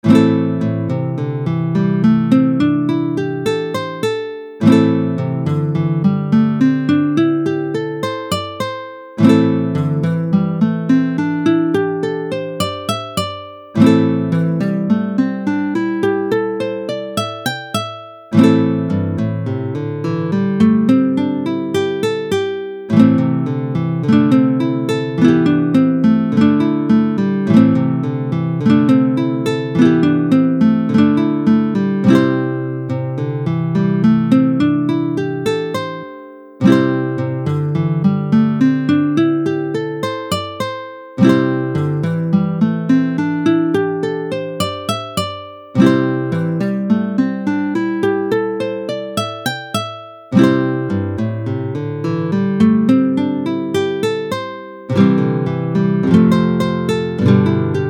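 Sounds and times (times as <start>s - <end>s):
pentatonic melody in minor and major: 0.0s - 57.8s.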